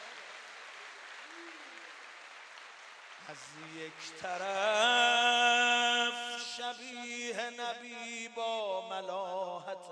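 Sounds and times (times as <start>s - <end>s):
crowd clapping: 0.0s - 6.2s
speech: 3.3s - 9.9s.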